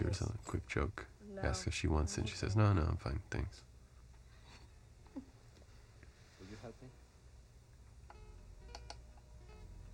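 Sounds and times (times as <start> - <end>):
low steady hum: 0.0 - 9.9
speech: 0.1 - 3.7, 6.5 - 7.0
computer mouse or key clicks: 8.7 - 9.0.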